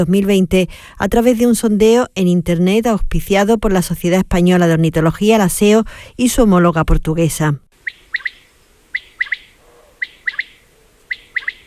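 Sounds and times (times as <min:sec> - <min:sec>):
speech: 0:00.0 - 0:07.6
male common quail song: 0:07.8 - 0:11.6.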